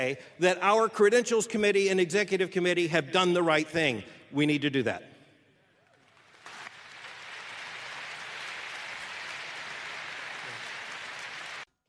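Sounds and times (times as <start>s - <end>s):
speech: 0.0s - 5.1s
large convention audience applauding a speaker: 6.0s - 11.7s.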